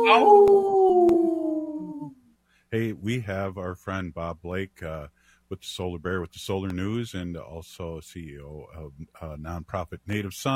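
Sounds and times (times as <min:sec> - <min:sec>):
speech: 0:00.0 - 0:00.7, 0:02.7 - 0:10.5
wolf howling: 0:00.0 - 0:02.1.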